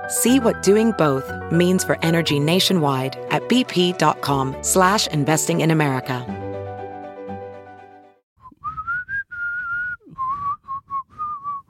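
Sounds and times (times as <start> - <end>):
speech: 0.1 - 6.5
person whistling a bright theme song melody: 8.4 - 11.6.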